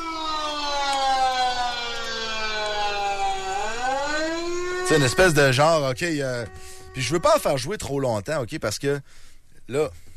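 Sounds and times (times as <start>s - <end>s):
lockdown alert siren wailing: 0.0s - 8.0s
speech: 4.9s - 10.1s.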